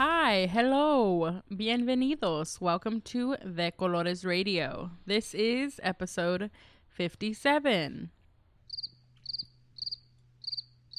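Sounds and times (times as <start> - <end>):
speech: 0.3 - 8.2
crickets chirping: 8.7 - 10.9.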